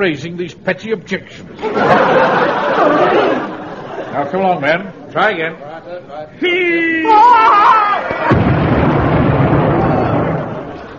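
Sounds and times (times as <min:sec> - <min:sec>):
speech: 0:00.0 - 0:03.5, 0:04.1 - 0:08.4
laughter: 0:01.5 - 0:04.8
landmine explosion booming blast: 0:08.2 - 0:10.9.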